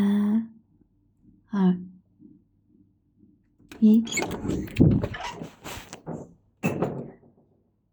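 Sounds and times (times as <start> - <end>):
speech: 1.5 - 1.9, 3.8 - 6.2
door opening with a heavy thud: 3.7 - 7.4.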